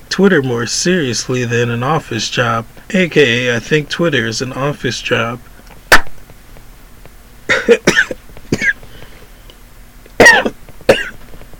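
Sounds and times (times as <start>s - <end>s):
speech: 0.2s - 5.6s, 7.7s - 8.1s
sharp coughs: 7.5s - 8.8s, 10.2s - 11.2s.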